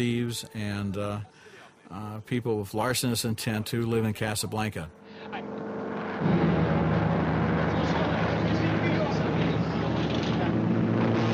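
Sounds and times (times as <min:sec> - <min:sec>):
speech: 0:00.0 - 0:06.5
model propeller airplane engine drone flying overhead: 0:05.0 - 0:11.3.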